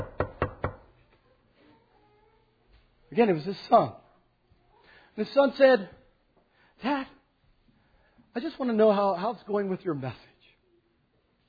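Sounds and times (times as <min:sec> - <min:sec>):
knocking on a door: 0:00.0 - 0:00.9
speech: 0:03.2 - 0:04.0, 0:05.2 - 0:06.0, 0:06.8 - 0:07.2, 0:08.4 - 0:10.3.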